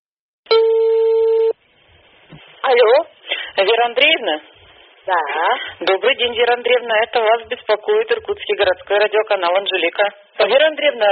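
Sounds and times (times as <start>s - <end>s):
telephone ringback tone beep: 0.5s - 1.6s
faint telephone line hiss: 1.2s - 8.6s
speech: 2.7s - 11.1s.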